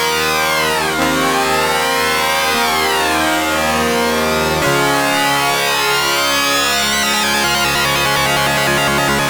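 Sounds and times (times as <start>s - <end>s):
slow synthesizer sync sweep factory patch: 0.1s - 9.2s.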